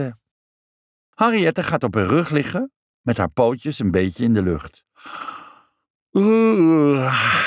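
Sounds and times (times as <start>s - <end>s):
speech: 0.0s - 0.2s, 1.2s - 5.4s, 6.1s - 7.4s
soft breath: 5.0s - 5.8s
person yawning loudly and exaggeratedly: 6.2s - 7.4s.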